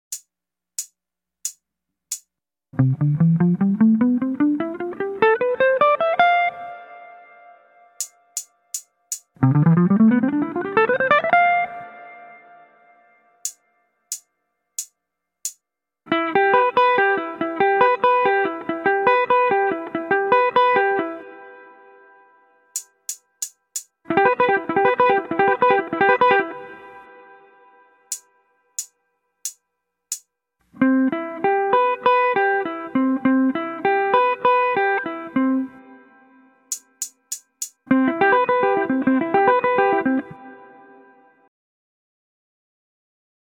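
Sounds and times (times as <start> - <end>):
guitar workout playing: 2.8 - 8.8, 9.4 - 12.7, 16.1 - 21.7, 24.1 - 26.8, 30.8 - 36.0, 36.7 - 40.8.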